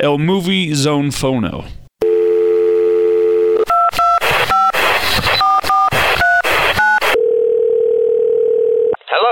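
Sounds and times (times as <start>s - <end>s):
speech: 0.0s - 1.8s
telephone dial tone: 2.0s - 4.8s, 5.4s - 9.0s.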